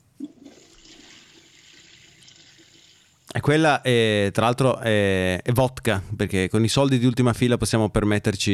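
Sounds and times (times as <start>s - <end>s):
toilet flushing water gush in an office bathroom: 0.2s - 3.3s
speech: 3.4s - 8.5s.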